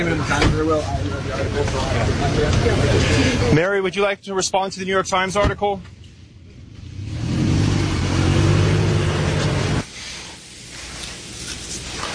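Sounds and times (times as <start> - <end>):
speech: 0.0 - 6.0
car engine accelerating and revving as the car drives away: 6.5 - 9.9.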